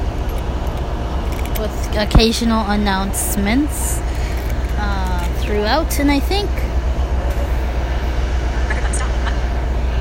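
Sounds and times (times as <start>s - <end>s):
train arriving at a platform: 0.0s - 10.0s
speech: 1.6s - 6.7s.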